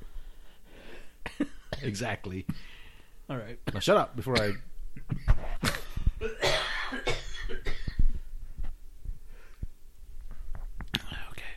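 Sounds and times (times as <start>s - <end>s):
speech: 1.8s - 5.3s
person coughing harshly: 4.3s - 8.0s.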